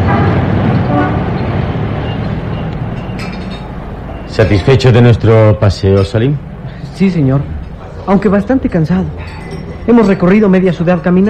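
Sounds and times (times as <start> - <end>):
car horn tooting briefly on a busy city street: 0.0 - 1.4
continuous roar of dense busy city street traffic: 0.0 - 9.9
car engines rumbling in dense city traffic: 0.0 - 11.2
speech: 4.4 - 11.2.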